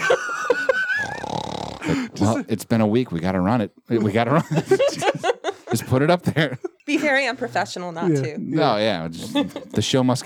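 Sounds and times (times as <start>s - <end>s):
laughter: 0.0s - 2.4s, 3.9s - 7.0s, 9.1s - 10.2s
speech: 0.1s - 0.4s, 1.9s - 10.2s
person imitating snoring with throaty grunts and snorts: 1.0s - 2.4s.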